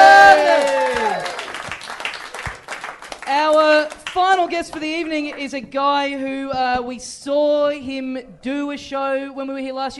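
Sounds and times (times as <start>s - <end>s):
live audience clapping and cheering: 0.0s - 5.5s
speech: 4.6s - 9.9s.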